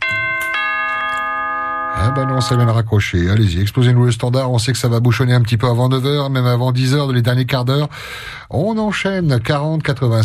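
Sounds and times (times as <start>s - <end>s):
bright metallic bell ringing: 0.0s - 2.9s
speech: 2.0s - 10.2s.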